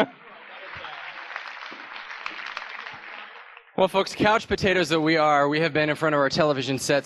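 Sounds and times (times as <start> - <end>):
speech: 0.0 - 0.2, 3.8 - 7.0
audience applause: 0.0 - 4.4.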